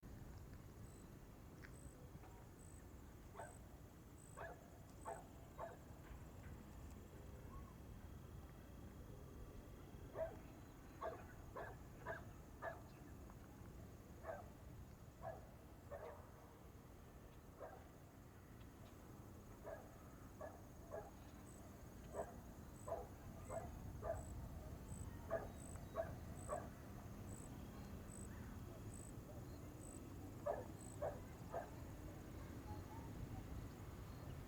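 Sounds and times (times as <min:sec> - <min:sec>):
outdoor ambience: 0:00.0 - 0:34.4
dog: 0:03.4 - 0:03.6, 0:04.4 - 0:06.2, 0:10.1 - 0:12.9, 0:14.2 - 0:14.5, 0:15.2 - 0:16.3, 0:17.6 - 0:17.9, 0:19.6 - 0:21.3, 0:22.1 - 0:24.4, 0:25.2 - 0:26.8, 0:30.4 - 0:31.9.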